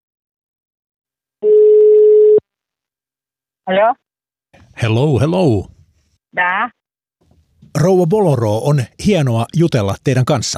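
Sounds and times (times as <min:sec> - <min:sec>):
person answering phone: 0:01.4 - 0:02.4
telephone ringback tone: 0:01.4 - 0:02.4
speech: 0:03.7 - 0:04.0, 0:04.8 - 0:05.7, 0:06.3 - 0:06.8, 0:07.7 - 0:10.5.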